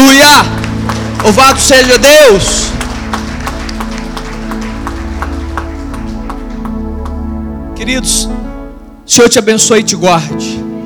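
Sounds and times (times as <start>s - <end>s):
audience applauding: 0.0s - 8.4s
sustained musical tone: 0.5s - 10.8s
speech: 1.2s - 2.8s, 7.8s - 8.4s, 9.1s - 10.7s.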